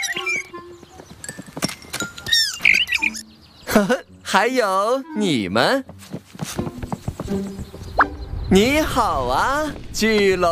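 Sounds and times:
small bird chirping: 0.0 - 1.5, 2.1 - 4.2, 6.9 - 8.6
speech: 3.8 - 6.0, 7.3 - 7.6, 8.5 - 10.5.

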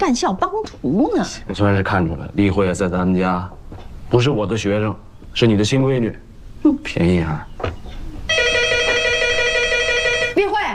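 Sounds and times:
speech: 0.0 - 7.8
telephone ringing with a long electronic trill: 8.3 - 10.4.

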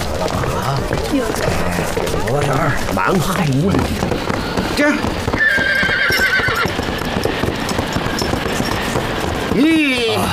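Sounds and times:
busy noisy clamor at a horse farm: 0.0 - 10.3
horse hooves clopping at a horse farm: 0.0 - 10.3
speech: 0.2 - 5.6, 9.6 - 10.3
horse whinny: 5.3 - 6.8.

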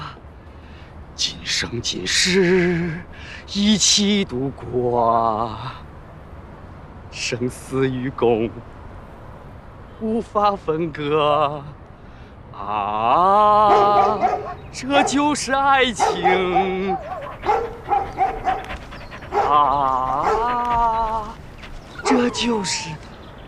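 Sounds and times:
speech: 1.2 - 5.9, 7.2 - 8.8, 10.0 - 11.8, 12.6 - 17.6, 19.5 - 21.3, 22.2 - 23.1
dog barking and howling: 13.6 - 23.1.

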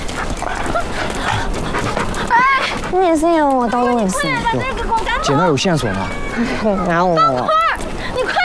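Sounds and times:
dog panting and whimpering: 0.0 - 4.8
speech: 2.9 - 7.6.

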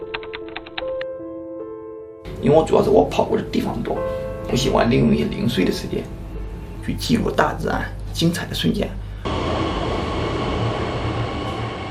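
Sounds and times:
speech: 2.4 - 6.2, 6.9 - 9.0
subway train in motion rumbling: 9.0 - 11.9
thin high whine of subway train: 9.2 - 11.9.

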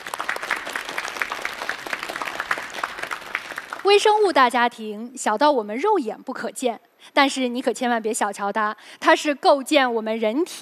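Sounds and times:
audience applause: 0.0 - 3.9
speech: 3.9 - 10.6.

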